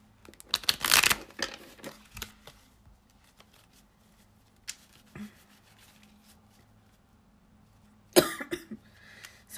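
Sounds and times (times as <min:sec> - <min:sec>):
rustling and shuffling of tarot cards: 0:00.2 - 0:07.1
raspy coughs from a sick person: 0:08.2 - 0:08.8.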